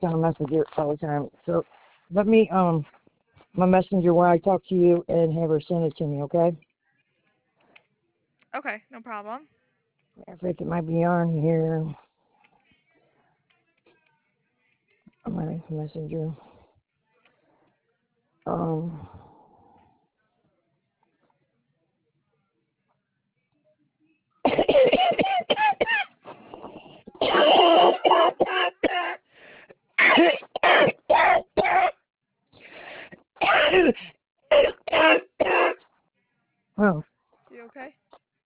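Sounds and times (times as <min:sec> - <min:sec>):
speech: 0:00.0 - 0:03.0, 0:03.6 - 0:06.7, 0:08.5 - 0:09.6, 0:10.2 - 0:12.0, 0:15.2 - 0:16.5, 0:18.4 - 0:19.2, 0:27.2 - 0:29.2, 0:30.1 - 0:31.9, 0:33.6 - 0:35.7, 0:36.8 - 0:37.1
short gasping breaths: 0:18.9 - 0:20.0, 0:26.2 - 0:27.2, 0:32.6 - 0:33.3
person in a harsh coughing fit: 0:24.5 - 0:26.1, 0:27.2 - 0:29.2, 0:30.0 - 0:31.9, 0:33.4 - 0:35.8.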